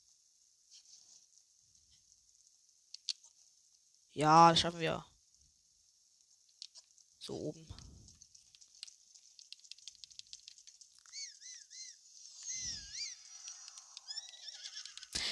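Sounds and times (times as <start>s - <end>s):
light ticking and pattering: 0.3s - 4.1s, 5.2s - 15.2s
speech: 4.2s - 5.1s, 7.2s - 7.8s
horse whinnying: 12.5s - 15.2s.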